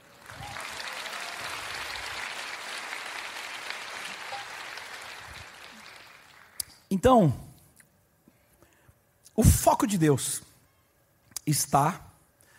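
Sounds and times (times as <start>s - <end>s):
large audience applauding: 0.0s - 6.9s
speech: 6.9s - 7.4s, 9.4s - 10.5s, 11.5s - 12.1s.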